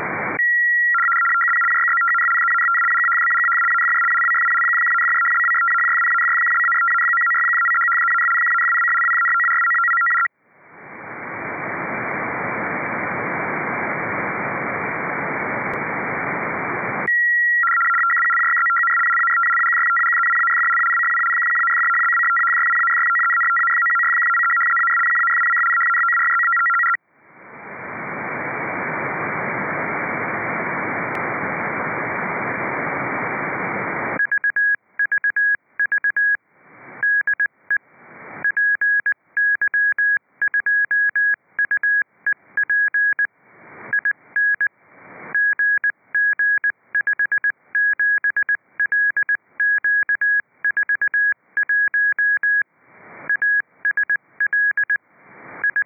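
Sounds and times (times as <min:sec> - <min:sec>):
RTTY radioteletype signal: 0:00.2 - 0:10.3, 0:12.5 - 0:27.0, 0:27.8 - 0:55.8
CW morse code tones: 0:00.4 - 0:10.3, 0:17.0 - 0:27.0, 0:34.2 - 0:36.4, 0:37.0 - 0:37.8, 0:38.4 - 0:43.3, 0:43.9 - 0:44.7, 0:45.3 - 0:52.6, 0:53.3 - 0:55.0, 0:55.6 - 0:55.8.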